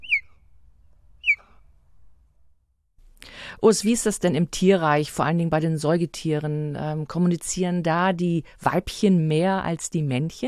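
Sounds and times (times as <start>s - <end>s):
human-whistled notes swooping down like a bird call: 1.2s - 1.4s
speech: 3.6s - 10.4s.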